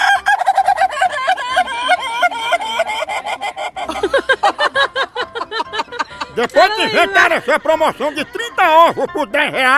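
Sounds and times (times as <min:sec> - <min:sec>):
rooster crowing: 0:00.0 - 0:01.0
laughter: 0:00.0 - 0:09.7
speech: 0:06.4 - 0:09.7.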